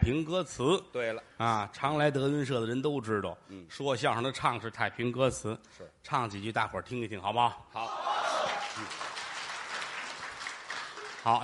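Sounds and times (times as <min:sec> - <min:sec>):
speech: 0:00.0 - 0:08.2, 0:08.8 - 0:09.1, 0:11.2 - 0:11.4
audience applause at a comic crosstalk show: 0:08.0 - 0:11.4.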